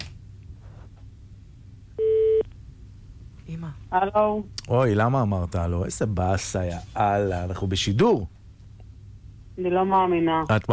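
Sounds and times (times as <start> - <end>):
electronic ringback tone of an outgoing phone call: 2.0 - 2.4
speech: 3.5 - 8.4, 9.6 - 10.7.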